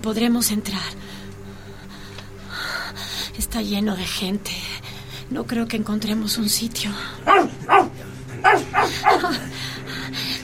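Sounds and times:
speech: 0.0 - 1.2, 3.4 - 7.6
low hum: 0.0 - 10.4
dog barking: 7.3 - 9.4.

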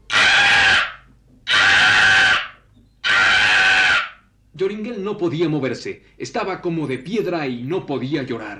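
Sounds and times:
owl screeching: 0.0 - 4.3
speech: 4.7 - 8.5.

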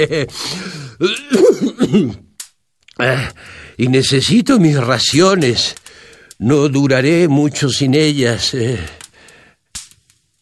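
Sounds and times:
speech: 0.0 - 2.2, 3.0 - 5.8, 6.4 - 9.0
raspy coughing: 0.2 - 2.3
throat clearing: 1.0 - 2.3.

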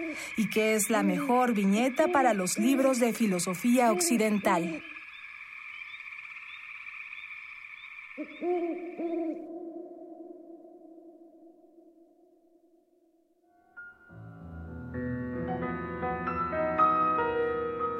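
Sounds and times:
speech: 0.0 - 5.0
owl hooting in low drawn-out calls: 1.2 - 5.2, 5.8 - 12.5
dense music: 14.2 - 17.9.

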